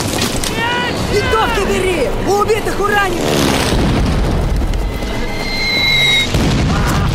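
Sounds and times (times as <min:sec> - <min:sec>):
churning rumble after explosion: 0:00.0 - 0:07.1
speech: 0:01.4 - 0:03.8
bomb from an air strike exploding in a trench: 0:03.6 - 0:04.8, 0:06.3 - 0:07.1.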